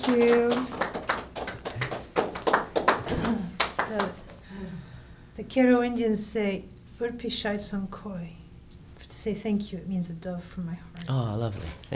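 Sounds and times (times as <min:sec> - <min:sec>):
small group applauding: 0:00.0 - 0:04.4
speech: 0:00.1 - 0:00.9, 0:05.4 - 0:08.4, 0:09.2 - 0:11.9.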